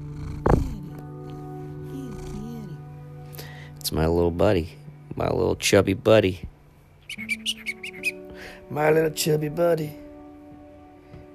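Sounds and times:
cat purring: 0:00.0 - 0:02.8
speech: 0:03.9 - 0:06.5, 0:08.7 - 0:10.0.

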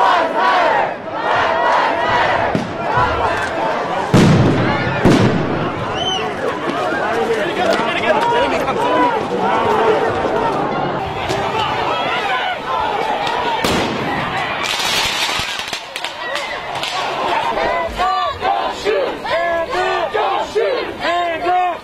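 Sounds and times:
loud protest crowd shouting and yelling: 0:00.0 - 0:21.8
sharp bangs of tear gas canisters at a protest: 0:04.1 - 0:06.1, 0:13.6 - 0:17.0.

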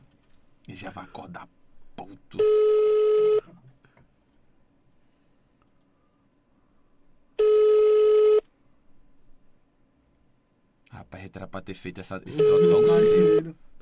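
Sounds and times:
speech: 0:00.7 - 0:03.1, 0:11.1 - 0:13.7
telephone ringback tone from a phone line: 0:07.4 - 0:08.4, 0:12.3 - 0:13.4.

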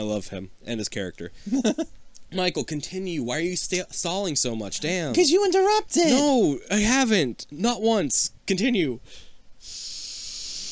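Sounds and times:
speech: 0:00.0 - 0:09.9
long steady sniff through the nose: 0:09.1 - 0:10.7.

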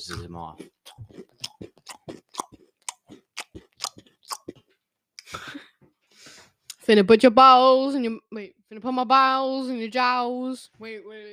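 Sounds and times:
speech: 0:00.0 - 0:01.7, 0:06.9 - 0:11.3
person chewing food loudly: 0:00.0 - 0:04.8.

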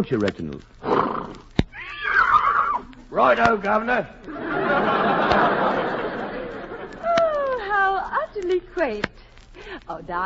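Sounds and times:
speech: 0:00.0 - 0:00.8, 0:03.1 - 0:05.4, 0:08.4 - 0:09.2, 0:09.8 - 0:10.2
horse snorting: 0:00.8 - 0:01.5
horse whinnying: 0:00.8 - 0:03.0
laughter: 0:03.2 - 0:08.1.

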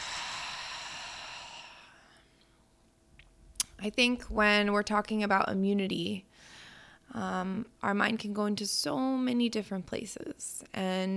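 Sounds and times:
deep breath in and long exhale in a breathing exercise: 0:00.0 - 0:02.1
speech: 0:03.8 - 0:06.5, 0:07.1 - 0:11.1.

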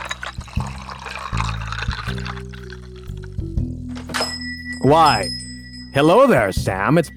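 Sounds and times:
room-temperature water pouring into a glass: 0:00.0 - 0:03.4
speech: 0:04.8 - 0:05.4, 0:06.0 - 0:07.1.

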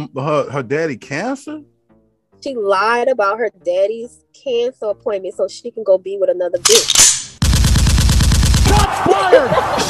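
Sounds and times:
speech: 0:00.0 - 0:01.7, 0:02.4 - 0:07.1, 0:08.8 - 0:09.8
automatic gunfire sound effect: 0:06.6 - 0:08.9
laughter: 0:08.8 - 0:09.8.

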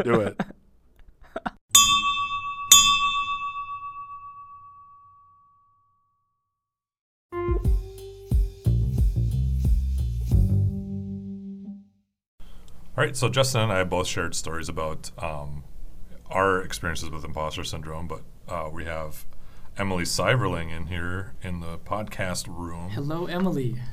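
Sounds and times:
speech: 0:00.0 - 0:00.5, 0:13.0 - 0:15.7, 0:16.3 - 0:23.9
small handbell ringing: 0:01.8 - 0:05.7
upbeat music: 0:07.4 - 0:11.2.

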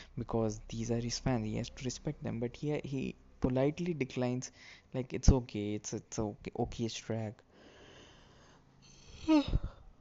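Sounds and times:
speech: 0:00.2 - 0:07.5, 0:09.3 - 0:09.7
soft breathy exhales: 0:07.5 - 0:09.9
person yawning: 0:08.8 - 0:09.9.

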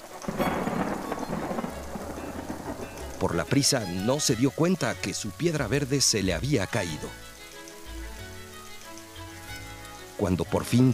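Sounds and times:
low rumble of thunder: 0:00.0 - 0:05.9
heavy rain downpour: 0:00.0 - 0:10.9
speech: 0:03.2 - 0:07.3, 0:10.2 - 0:10.9.

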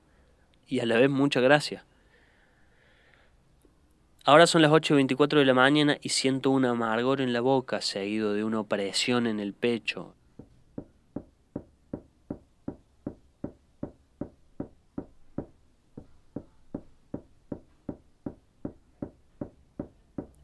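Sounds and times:
speech: 0:00.7 - 0:01.9, 0:04.2 - 0:10.2
hammer knocks: 0:10.4 - 0:20.4.

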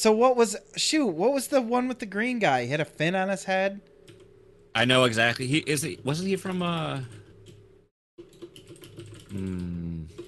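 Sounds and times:
speech: 0:00.0 - 0:03.9, 0:04.8 - 0:07.2, 0:09.3 - 0:10.2
typing on a computer keyboard: 0:08.2 - 0:10.2.

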